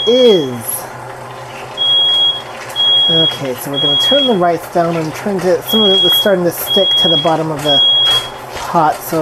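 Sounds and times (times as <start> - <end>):
smoke alarm beeping in kitchen: 0.0 - 0.5, 1.8 - 4.5, 5.7 - 8.4
low steady hum: 0.0 - 9.1
speech: 0.1 - 0.8, 3.1 - 8.1, 8.7 - 9.1.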